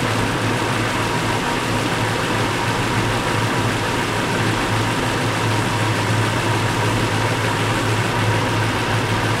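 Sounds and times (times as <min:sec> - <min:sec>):
StuG 40 tank engine running: 0:00.0 - 0:09.3.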